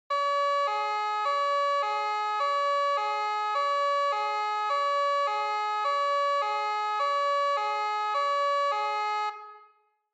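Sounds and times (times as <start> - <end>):
police car siren: 0.1 - 9.9.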